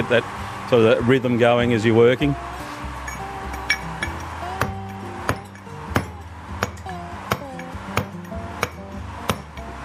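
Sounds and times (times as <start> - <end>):
speech: 0.0 - 2.5
mallet striking drafting chisel on stone: 3.0 - 9.8.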